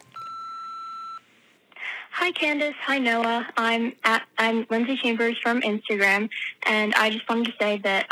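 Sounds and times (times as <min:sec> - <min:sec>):
answering machine beep: 0:00.0 - 0:01.2
speech: 0:02.2 - 0:08.1.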